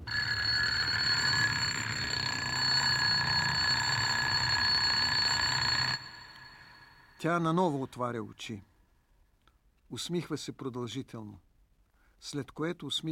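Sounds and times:
loud electric bell ringing: 0.0 - 7.2
speech: 7.2 - 8.7, 9.9 - 11.4, 12.2 - 13.1.

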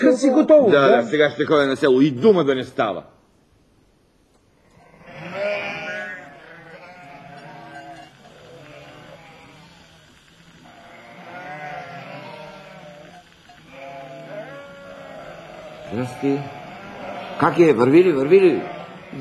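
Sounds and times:
speech: 0.0 - 3.2, 15.9 - 16.6, 17.4 - 19.1
flock of sheep bleating: 4.6 - 19.1.

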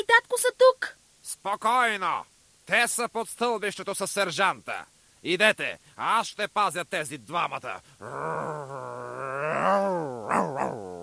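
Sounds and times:
speech: 1.4 - 11.0
dog growling: 8.0 - 11.0.

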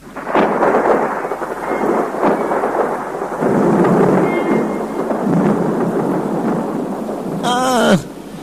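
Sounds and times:
low rumble of thunder: 0.0 - 7.4
heavy rain: 0.0 - 8.4
brief high-pitched cry sliding downward: 7.4 - 8.1.

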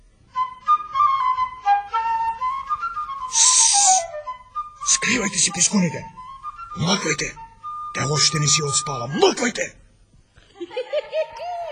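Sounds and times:
folk whistles playing a wavering melody: 0.3 - 9.1
breathy hissing burst: 3.3 - 4.1
speech: 5.1 - 9.8
laughter: 10.5 - 11.7.

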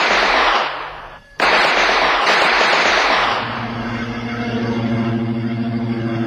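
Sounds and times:
volley of rifle shots from a firing squad: 0.0 - 3.8
low steady droning tone: 3.2 - 6.2.

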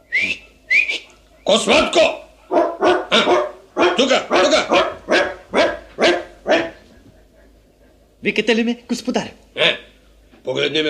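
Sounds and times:
dog barking sharply: 0.3 - 7.0
speech: 1.5 - 2.2, 8.2 - 9.8, 10.5 - 10.8.

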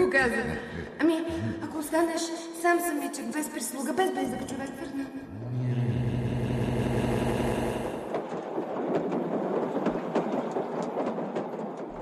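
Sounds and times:
speech: 0.1 - 1.1, 1.9 - 5.5
steady humming engine drone: 5.3 - 8.2
train rattling along the tracks: 7.6 - 12.0.

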